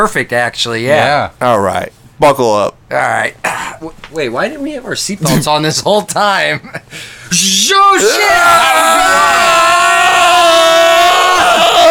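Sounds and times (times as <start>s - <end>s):
speech: 0.0s - 10.9s
people screaming: 7.3s - 11.8s
rising whoop: 8.0s - 11.8s.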